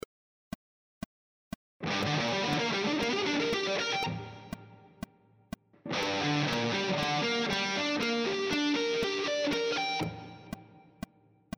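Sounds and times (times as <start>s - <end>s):
guitar triad arpeggio sequences: 1.8s - 5.0s, 5.9s - 10.8s.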